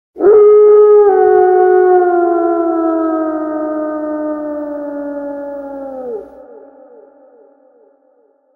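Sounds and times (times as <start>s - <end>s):
wolf howling: 0.2s - 6.8s.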